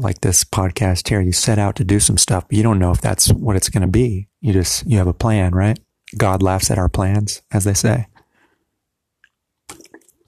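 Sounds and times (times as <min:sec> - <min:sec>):
speech: 0:00.0 - 0:08.1
person sipping water: 0:09.2 - 0:10.2.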